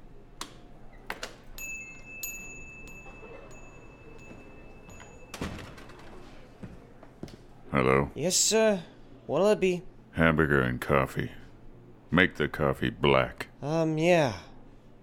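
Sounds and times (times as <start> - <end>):
thin sustained ring: 1.6 - 6.5
door opening with clicks and rattles: 3.4 - 6.5
door thumping shut: 5.3 - 6.2
speech: 7.7 - 11.4, 12.1 - 14.5.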